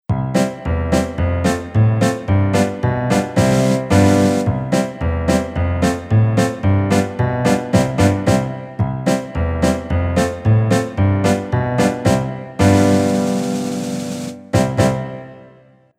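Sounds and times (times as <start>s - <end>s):
bass: 0.0s - 15.2s
acoustic piano chords: 0.1s - 15.9s.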